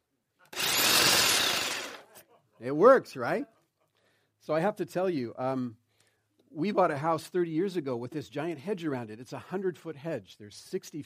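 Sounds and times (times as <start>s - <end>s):
power tool motor running at full speed: 0.6s - 2.0s
speech: 2.6s - 3.6s, 4.5s - 5.8s, 6.5s - 11.0s.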